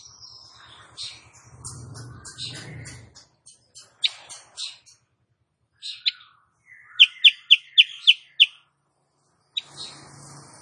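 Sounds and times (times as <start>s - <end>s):
female sooty-headed bulbul singing energetically: 0.0s - 8.8s, 9.4s - 10.4s.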